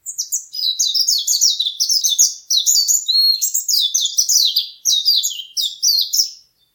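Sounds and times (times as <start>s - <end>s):
Japanese white-eye: 0.0s - 6.7s.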